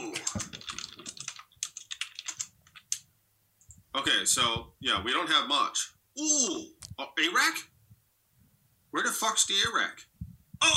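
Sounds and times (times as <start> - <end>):
typing on a computer keyboard: 0.1 - 3.8
speech: 0.3 - 0.6, 4.0 - 7.7, 8.9 - 10.7.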